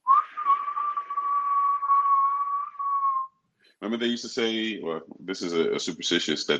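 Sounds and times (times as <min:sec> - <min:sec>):
person whistling one sustained note: 0:00.0 - 0:03.3
speech: 0:03.8 - 0:06.5.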